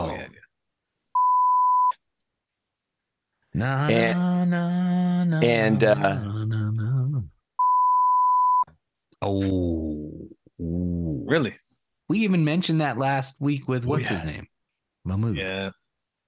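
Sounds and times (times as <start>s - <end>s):
censor bleep tone: 1.2s - 2.0s, 7.6s - 8.7s
speech: 3.6s - 6.4s, 9.2s - 15.8s
voices singing: 3.6s - 7.3s, 13.9s - 14.4s.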